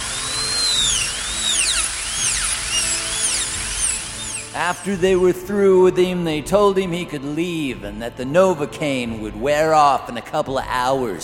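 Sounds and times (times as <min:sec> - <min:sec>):
high-pitched dental drill whirring: 0:00.0 - 0:05.4
speech: 0:04.6 - 0:11.2.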